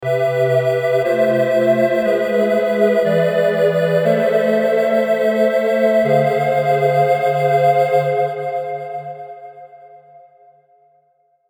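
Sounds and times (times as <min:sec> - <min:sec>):
major sixth diminished chord progression: 0:00.0 - 0:09.0.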